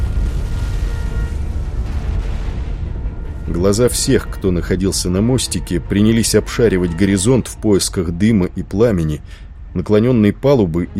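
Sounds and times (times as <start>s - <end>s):
powerful explosion with deep rumbling: 0.0s - 7.3s
speech: 3.5s - 10.9s.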